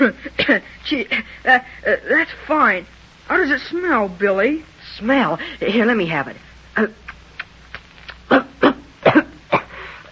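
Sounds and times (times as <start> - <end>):
speech: 0.0 - 7.0
person coughing after smoking: 8.3 - 9.9.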